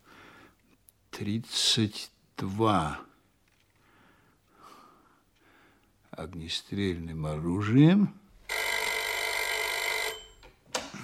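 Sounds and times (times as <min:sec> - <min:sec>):
speech: 0:01.2 - 0:03.1, 0:06.2 - 0:08.2
telephone bell ringing: 0:08.4 - 0:10.4.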